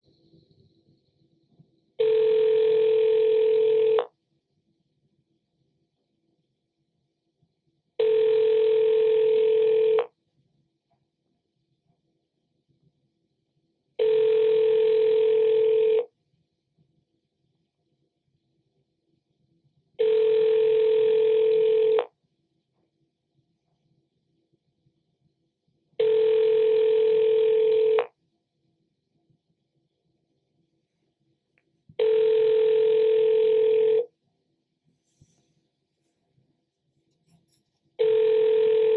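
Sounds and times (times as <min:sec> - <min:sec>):
phone dialing: 0:02.0 - 0:04.0, 0:08.0 - 0:10.1, 0:14.0 - 0:16.0, 0:20.0 - 0:22.1, 0:26.0 - 0:28.1, 0:32.0 - 0:34.0, 0:38.0 - 0:38.9.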